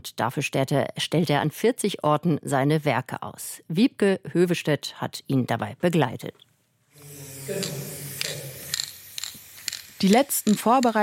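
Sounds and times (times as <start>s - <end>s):
speech: 0.0s - 6.5s, 7.5s - 8.0s, 10.0s - 11.0s
spray can hissing bursts on a wall: 6.9s - 11.0s.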